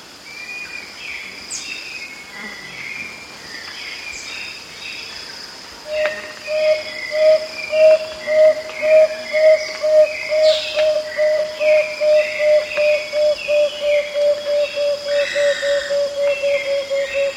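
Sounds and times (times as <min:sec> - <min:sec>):
striated antthrush singing low hollow whistled notes in South America: 0:05.9 - 0:17.3.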